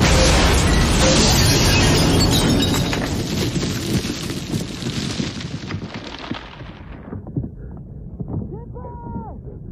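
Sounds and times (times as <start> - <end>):
film explosions in a combat scene: 0.0 - 7.3.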